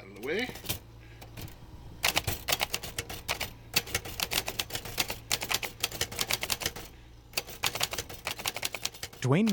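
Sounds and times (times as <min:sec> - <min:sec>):
speech: 0:00.2 - 0:00.7, 0:09.2 - 0:09.5
typewriter keys clacking: 0:02.0 - 0:09.5.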